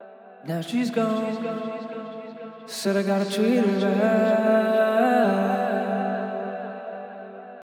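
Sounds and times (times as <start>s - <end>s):
vocal: 0.0s - 7.4s.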